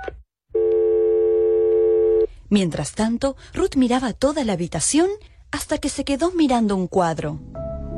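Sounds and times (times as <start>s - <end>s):
steady continuous tone on the telephone line: 0.5s - 2.3s
speech: 2.5s - 7.5s.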